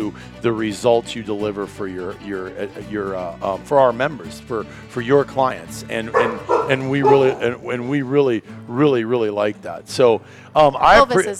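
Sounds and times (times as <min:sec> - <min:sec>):
speech: 0:00.0 - 0:11.3
dog barking in quick yipping bursts: 0:06.1 - 0:07.6.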